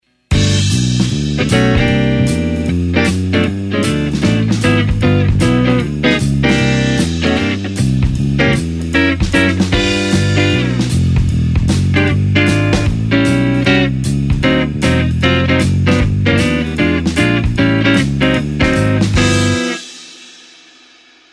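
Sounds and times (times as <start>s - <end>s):
swing chord: 0.3s - 21.2s.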